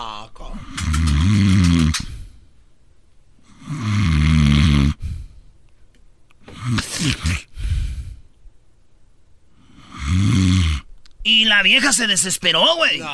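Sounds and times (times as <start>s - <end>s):
sharper snorting catch: 0.6s - 2.2s, 3.5s - 5.3s, 6.5s - 8.1s, 9.6s - 10.9s
heavy rattling snores: 0.7s - 2.1s, 3.5s - 5.0s, 9.7s - 10.9s
speech: 11.5s - 13.1s.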